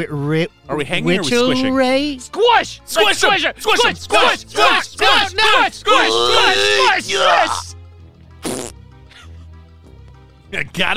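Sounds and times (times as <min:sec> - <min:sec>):
speech: 0:00.0 - 0:07.6, 0:10.5 - 0:10.9
short loud raspy fart: 0:08.4 - 0:08.8.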